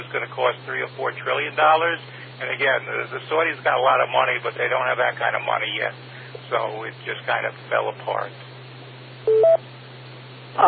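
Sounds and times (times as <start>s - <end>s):
low steady hum: 0.0s - 10.6s
speech: 0.1s - 8.5s
phone beeping from incoming texts: 9.3s - 9.6s.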